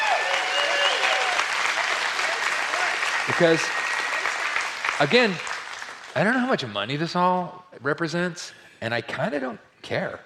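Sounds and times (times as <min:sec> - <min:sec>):
audience in a church clapping and cheering: 0:00.0 - 0:07.1
speech: 0:03.4 - 0:03.8, 0:05.0 - 0:05.5, 0:06.1 - 0:10.2.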